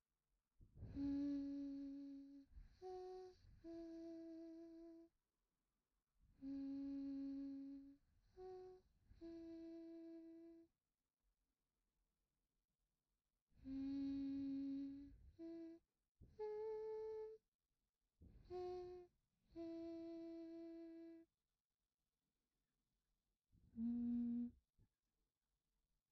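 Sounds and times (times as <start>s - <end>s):
person humming: 0.9s - 5.1s, 6.4s - 10.7s, 13.7s - 15.8s, 16.4s - 17.4s, 18.5s - 21.3s, 23.8s - 24.6s.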